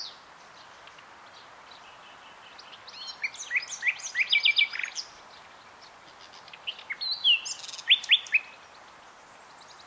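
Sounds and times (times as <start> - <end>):
common nightingale Luscinia megarhynchos song of varied chirps and sweeps: 0.0 - 9.8.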